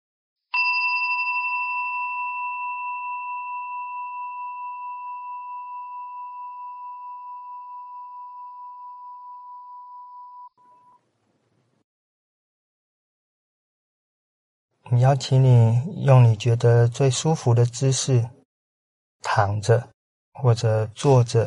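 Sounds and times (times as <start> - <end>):
meditation bell ringing: 0.6 - 10.5
speech: 14.9 - 18.4, 19.4 - 21.4.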